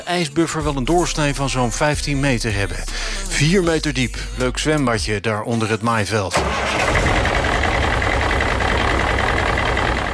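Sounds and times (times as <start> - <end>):
speech: 0.1 - 7.0
heavy truck engine idling: 6.4 - 10.1.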